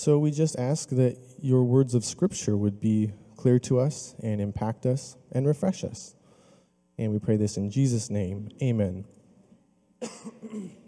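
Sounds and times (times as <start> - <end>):
speech: 0.0 - 6.2, 7.0 - 9.2, 10.0 - 10.8
person coughing: 10.0 - 10.8
rough throat clearing: 10.0 - 10.8.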